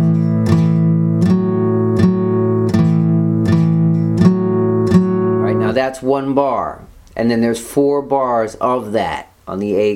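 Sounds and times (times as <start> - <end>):
acoustic guitar strumming between second and fourth frets: 0.0 - 7.0
speech: 5.8 - 9.9.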